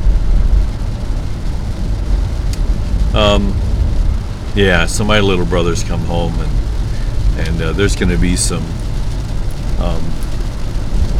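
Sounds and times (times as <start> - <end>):
heavy rain: 0.0 - 11.1
speech: 3.2 - 3.6, 4.6 - 6.6, 7.4 - 8.8, 9.8 - 10.2.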